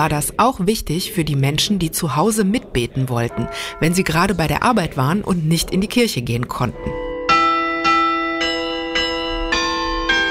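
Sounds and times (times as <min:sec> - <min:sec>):
speech: 0:00.0 - 0:07.0
church bells ringing: 0:03.0 - 0:10.2.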